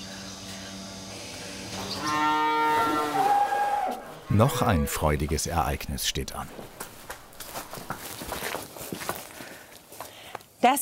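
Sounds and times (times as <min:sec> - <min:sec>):
Belgian Blue beef cow mooing: 0:01.8 - 0:05.2
speech: 0:04.3 - 0:06.8, 0:10.6 - 0:10.8.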